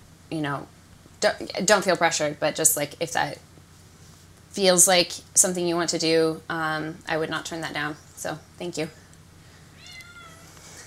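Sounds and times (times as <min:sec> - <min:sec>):
low steady hum: 0:00.0 - 0:10.8
speech: 0:00.3 - 0:03.5, 0:04.5 - 0:09.0
kitten meowing while climbing bedsheets: 0:09.8 - 0:10.6.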